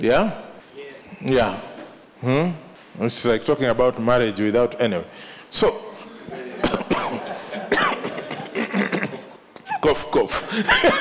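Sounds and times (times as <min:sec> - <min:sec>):
speech: 0:00.0 - 0:00.4, 0:01.2 - 0:06.4, 0:09.9 - 0:10.9
laughter: 0:06.0 - 0:09.8, 0:10.4 - 0:10.9
person coughing: 0:06.6 - 0:09.3.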